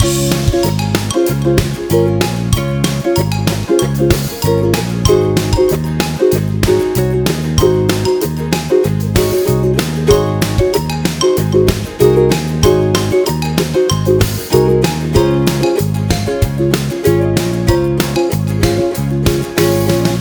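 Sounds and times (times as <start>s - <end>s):
corporate ukulele loop: 0.0s - 20.1s.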